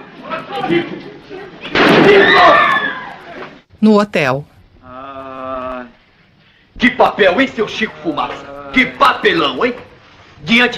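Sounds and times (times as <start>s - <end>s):
speech: 0.5s - 2.5s, 3.8s - 4.5s, 6.8s - 10.7s
gunshot fired into the air: 1.7s - 2.3s.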